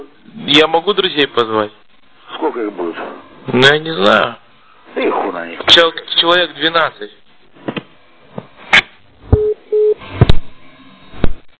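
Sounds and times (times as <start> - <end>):
speech: 0.0 - 1.8, 2.4 - 4.4, 5.0 - 7.2
telephone busy tone after a call is hung up: 9.4 - 10.0.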